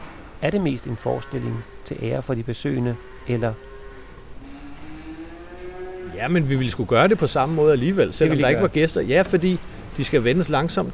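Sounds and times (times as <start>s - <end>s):
hum of a dairy cow barn on a farm: 0.0s - 10.9s
speech: 0.4s - 3.7s, 6.2s - 10.9s
cow mooing in a dairy barn: 0.6s - 2.1s, 2.8s - 8.7s.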